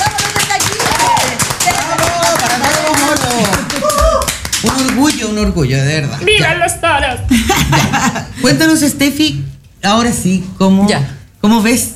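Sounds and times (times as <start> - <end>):
applause from a small group: 0.0 - 5.3
speech: 4.8 - 11.9
laughter: 7.3 - 8.6.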